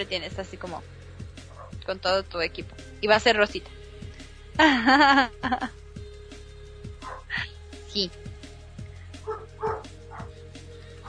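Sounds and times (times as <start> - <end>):
speech: 0.0 - 1.0, 1.8 - 3.8, 4.6 - 5.8, 8.0 - 8.3
dogs barking: 1.4 - 1.8, 7.0 - 7.3, 9.2 - 11.0
laughter: 4.6 - 5.7.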